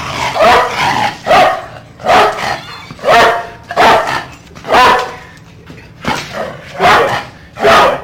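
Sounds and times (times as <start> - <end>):
police dog barking: 0.3 - 5.2, 6.7 - 8.0.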